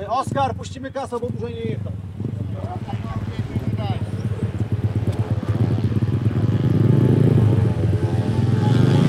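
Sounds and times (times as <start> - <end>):
speech: 0.1 - 3.1
small speedway motorcycle engine accelerating on a mini speedway track in Lublin: 4.0 - 9.0.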